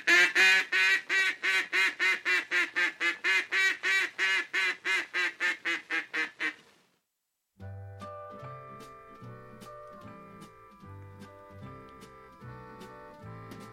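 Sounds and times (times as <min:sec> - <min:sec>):
duck call blowing loud quacks: 0:00.0 - 0:06.6
music with low plucked bass notes: 0:07.6 - 0:13.7.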